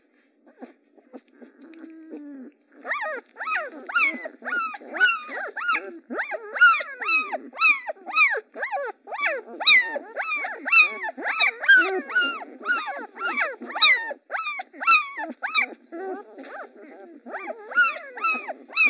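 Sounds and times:
puppies whimpering and yelping: 2.1 - 18.8.

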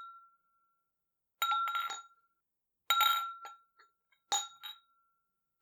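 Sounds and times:
champagne glasses clinking in cheers: 1.4 - 2.0, 2.9 - 3.6, 4.3 - 4.8.

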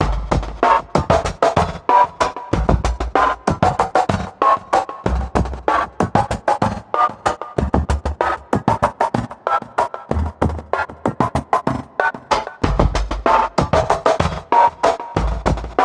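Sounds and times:
drum loop: 0.0 - 15.8.

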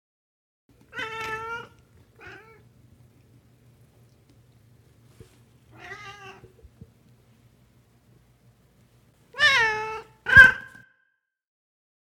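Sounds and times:
faint low hum: 0.7 - 10.5
cat meowing: 0.9 - 2.6, 5.7 - 6.6, 9.4 - 10.6.

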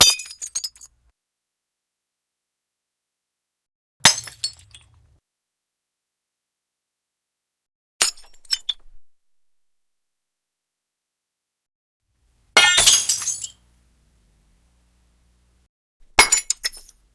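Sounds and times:
glass breaking and shattering: 0.0 - 0.9, 4.0 - 5.0, 12.6 - 13.6, 16.1 - 16.9.

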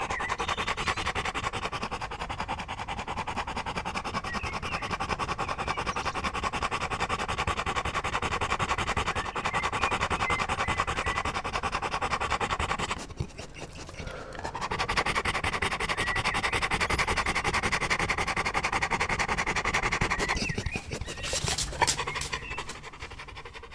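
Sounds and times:
dog panting: 0.0 - 23.7
scratchy rustling: 20.7 - 23.1.

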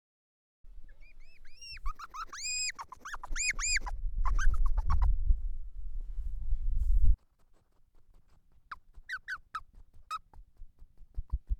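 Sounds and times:
hedgehog squealing and chirping: 0.9 - 5.1, 8.2 - 10.4
low rumbling background: 3.8 - 7.2.

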